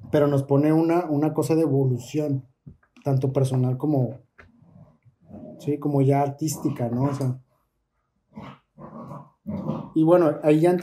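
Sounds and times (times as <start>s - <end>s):
speech: 0.1s - 4.3s, 5.6s - 7.4s, 9.5s - 10.8s
several dogs barking and growling: 4.6s - 7.5s, 8.2s - 10.8s.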